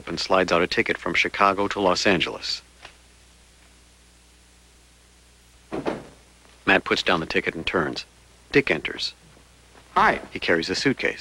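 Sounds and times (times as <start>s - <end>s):
speech: 0.0s - 2.7s, 6.7s - 9.2s, 10.0s - 11.1s
door gently pushed shut and latching: 5.7s - 6.2s.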